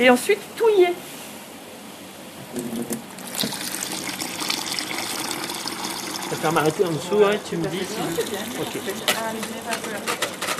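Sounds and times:
speech: 0.0 - 1.2, 2.5 - 3.6, 6.3 - 10.4
water pouring into a container for making granita: 3.0 - 7.0.

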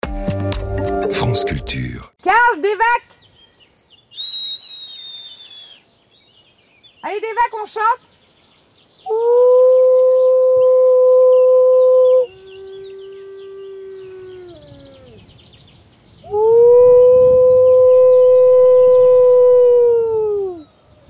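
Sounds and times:
speech: 1.3 - 3.2, 7.0 - 8.1, 9.1 - 9.6
wolfdog hybrid howling in long sustained tones: 9.1 - 15.2, 16.3 - 20.7.

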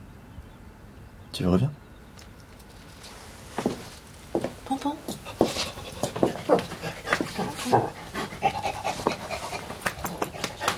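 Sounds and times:
speech: 1.4 - 1.8
dog panting: 5.0 - 10.7
dog whimpering: 5.7 - 9.1.

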